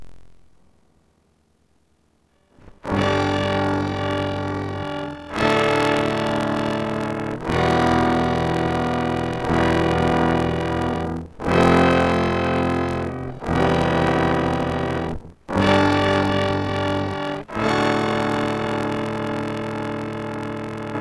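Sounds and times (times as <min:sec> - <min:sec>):
distorted open chords: 0:02.8 - 0:20.9.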